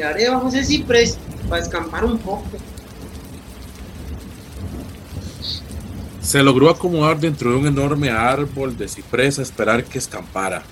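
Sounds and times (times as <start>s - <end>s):
speech: 0.0s - 2.8s, 6.3s - 10.7s
deep rumbling roll of thunder: 0.0s - 10.7s
heavy rain in a strong thunderstorm: 0.0s - 10.7s.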